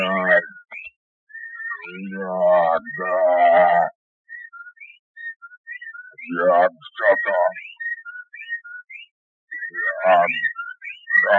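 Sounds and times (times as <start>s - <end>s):
whippoorwills calling together: 0.0s - 11.3s
thin whistled chirps: 0.5s - 2.0s, 4.3s - 6.3s, 6.9s - 9.8s, 10.4s - 11.3s.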